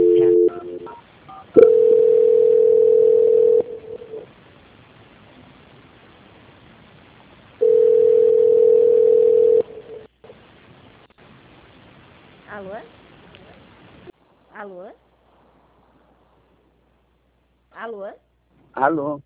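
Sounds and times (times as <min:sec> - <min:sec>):
long steady telephone hold tones during a call transfer: 0:00.0 - 0:03.8, 0:07.6 - 0:09.6
quiet telephone line hiss: 0:00.0 - 0:04.6, 0:07.4 - 0:10.4
speech: 0:18.8 - 0:19.2.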